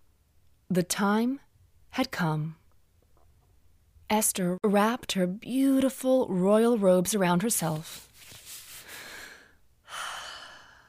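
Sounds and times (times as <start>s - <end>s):
speech: 0.7s - 2.6s, 4.1s - 8.1s
woman drawing a deep breath: 8.7s - 10.8s.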